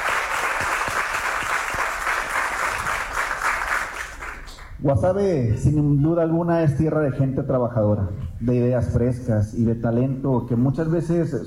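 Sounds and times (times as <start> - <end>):
crowd applauding at an event in Guasave: 0.0 - 4.8
speech: 4.8 - 11.4.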